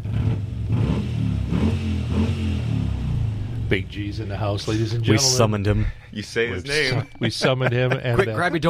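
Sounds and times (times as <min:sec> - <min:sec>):
Harley motorcycle engine revving: 0:00.0 - 0:05.6
speech: 0:03.7 - 0:08.6
laughter: 0:04.6 - 0:08.6.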